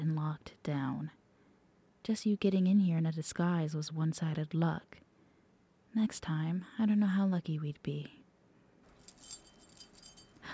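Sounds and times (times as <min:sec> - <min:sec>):
speech: 0:00.1 - 0:01.2, 0:02.0 - 0:05.0, 0:05.9 - 0:08.2
bunch of keys jangling: 0:08.9 - 0:10.4.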